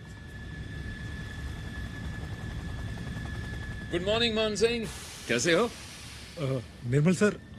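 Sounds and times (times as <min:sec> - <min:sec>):
aircraft engine or rotor rumble in a military airport hangar: 0:00.0 - 0:07.5
constant high whine: 0:00.0 - 0:07.5
speech: 0:03.9 - 0:05.8, 0:06.4 - 0:07.5.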